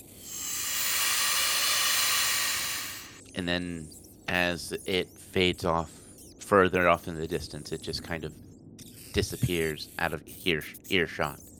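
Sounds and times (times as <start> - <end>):
steam hissing from a gash about 1 foot wide across stone: 0.2 - 3.2
speech: 3.4 - 8.4, 9.2 - 11.5.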